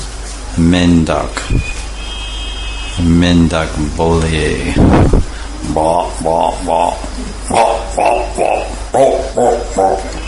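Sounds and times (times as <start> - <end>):
speech: 0.6 - 1.8, 3.0 - 10.2
man's voice imitating frog croaks: 5.6 - 10.2.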